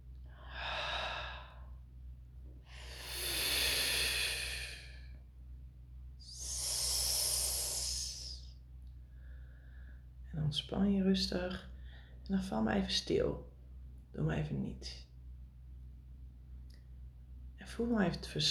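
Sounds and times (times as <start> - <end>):
steady low hum: 0.0 - 17.6
slow deep breathing during a guided relaxation exercise: 0.2 - 1.8, 2.6 - 5.3, 6.2 - 10.2
speech: 10.5 - 11.7, 12.3 - 13.5, 14.1 - 15.1, 17.8 - 18.4.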